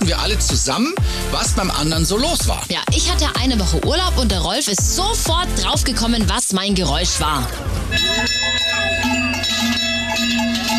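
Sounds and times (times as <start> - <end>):
speech: 0.1 - 9.8
cowbells of an alpine cattle drive in South Tyrol: 7.9 - 10.7.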